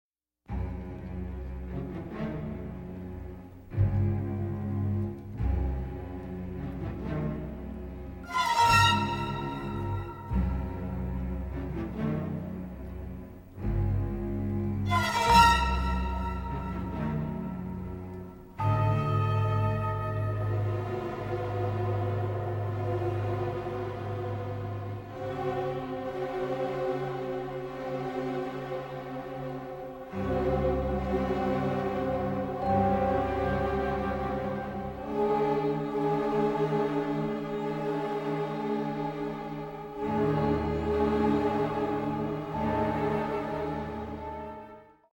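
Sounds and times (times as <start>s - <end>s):
strings: 0.5s - 45.1s
flutes: 8.1s - 12.2s, 14.7s - 45.1s
celesta: 32.6s - 35.0s.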